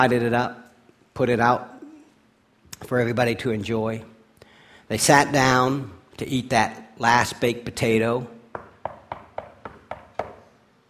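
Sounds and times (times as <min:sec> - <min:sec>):
speech: 0:00.0 - 0:00.6, 0:01.2 - 0:01.7, 0:02.8 - 0:04.1, 0:04.9 - 0:08.4
knocking on a door: 0:08.5 - 0:10.4.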